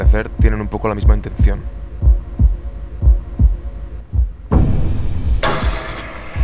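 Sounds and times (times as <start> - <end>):
speech: 0.0 - 1.8
deep thudding heartbeat-like bass pulses in music: 0.0 - 6.4.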